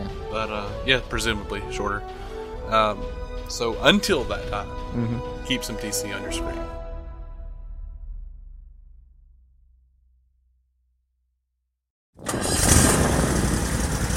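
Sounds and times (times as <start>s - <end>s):
speech: 0.4s - 6.8s
Toro Z-Master 4000 zero-turn mower engine starting up: 12.2s - 14.1s.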